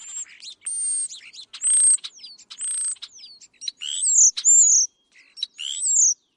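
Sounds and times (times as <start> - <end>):
European starling calling: 0.0 - 6.2.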